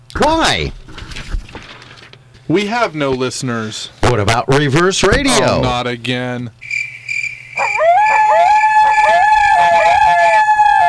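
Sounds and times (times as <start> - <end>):
speech: 0.2 - 0.8, 2.5 - 6.6
pack of coyotes howling and yipping: 7.5 - 10.8.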